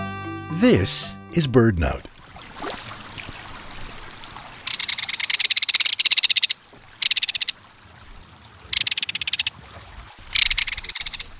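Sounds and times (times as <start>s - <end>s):
speech: 0.6s - 2.1s
flowing water: 1.6s - 11.3s
belted kingfisher metallic rattling call: 4.7s - 7.5s, 8.7s - 9.5s, 10.3s - 11.3s.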